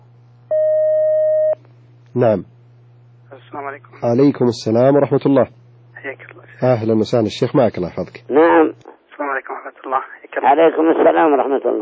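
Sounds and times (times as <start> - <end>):
telephone line tone as a new call connects on a call-in phone line: 0.5 - 1.6
speech: 2.1 - 2.6, 3.5 - 8.7, 9.9 - 11.8.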